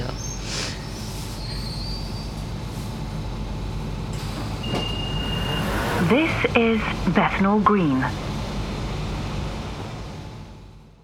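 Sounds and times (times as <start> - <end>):
train rumbling: 0.0 - 11.0
thin metallic train wheel squeals: 4.6 - 6.0
speech: 6.1 - 8.2.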